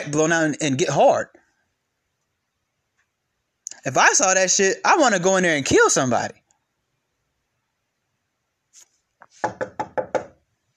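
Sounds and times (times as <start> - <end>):
speech: 0.0 - 1.4, 3.8 - 6.4, 9.4 - 9.8
quick knocks on a wooden surface: 9.4 - 10.4.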